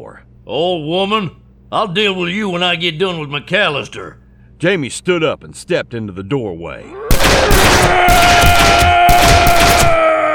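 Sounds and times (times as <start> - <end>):
speech: 0.0 - 8.9
gunfire in a close-range doorway shootout: 7.1 - 10.1.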